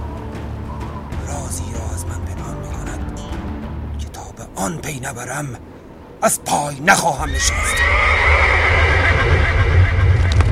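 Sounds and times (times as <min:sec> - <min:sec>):
speech: 0:01.5 - 0:03.4, 0:04.0 - 0:08.4
horse neighing: 0:07.0 - 0:10.3.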